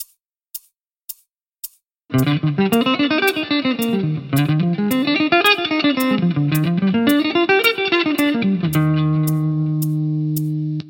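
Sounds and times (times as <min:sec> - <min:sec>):
guitar alternate and sweep picking: 0:02.1 - 0:10.8.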